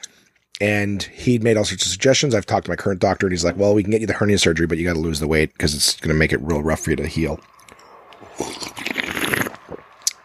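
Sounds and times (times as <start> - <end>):
speech: 0.6 - 7.6, 8.4 - 8.7
sipping a drink: 7.5 - 10.2
slurping a drink: 8.1 - 10.2.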